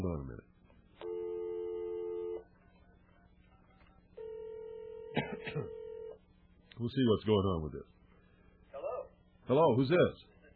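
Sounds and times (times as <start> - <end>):
speech: 0.0 - 0.5, 5.4 - 5.8, 6.8 - 8.0, 9.5 - 10.3
telephone line tone: 1.0 - 2.4, 4.2 - 6.2.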